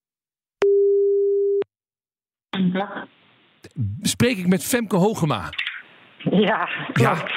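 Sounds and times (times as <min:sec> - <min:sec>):
telephone ringback tone while placing a call: 0:00.6 - 0:01.6
speech: 0:02.6 - 0:05.6, 0:06.2 - 0:07.3.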